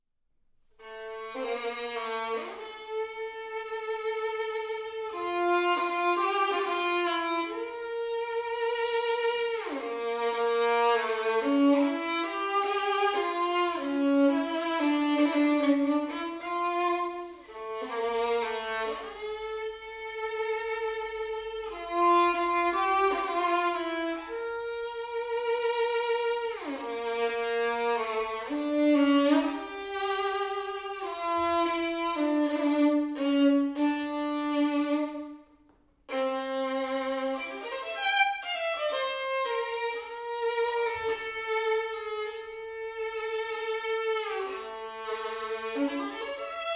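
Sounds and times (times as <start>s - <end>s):
solo violin: 0.7s - 46.7s.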